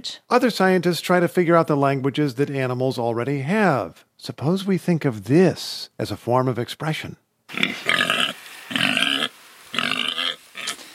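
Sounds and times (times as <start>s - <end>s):
speech: 0.0s - 7.9s
pig grunting: 7.5s - 10.8s.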